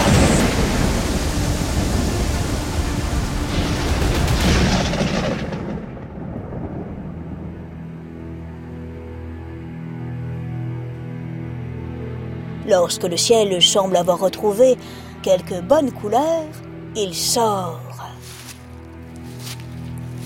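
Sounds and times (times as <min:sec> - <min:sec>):
crashing thunder in a violent thunderstorm: 0:00.0 - 0:07.9
heavy rain in a violent thunderstorm: 0:00.0 - 0:08.5
speech: 0:12.8 - 0:17.9.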